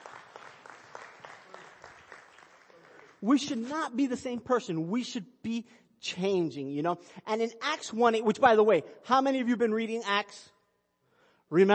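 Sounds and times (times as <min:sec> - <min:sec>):
crowd clapping: 0:00.0 - 0:03.7
speech: 0:03.2 - 0:10.5, 0:11.5 - 0:11.7.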